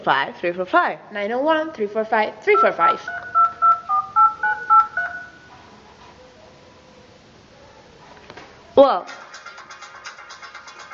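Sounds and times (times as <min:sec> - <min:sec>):
speech: 0:00.0 - 0:03.2, 0:08.8 - 0:09.4
telephone keypad dialing tones: 0:02.6 - 0:05.4.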